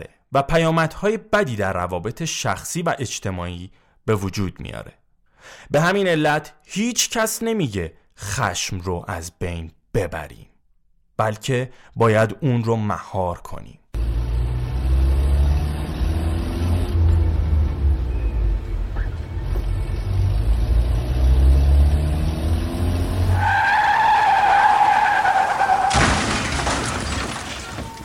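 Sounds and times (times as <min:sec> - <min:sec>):
speech: 0:00.0 - 0:10.5, 0:11.2 - 0:13.8
car engine rumbling low: 0:14.0 - 0:28.0
car tires squealing under hard braking: 0:14.2 - 0:28.0.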